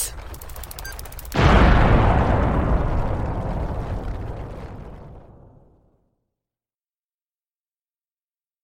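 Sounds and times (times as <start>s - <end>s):
bomb countdown ticking beeps: 0.3s - 1.4s
bomb explosion: 1.3s - 6.1s.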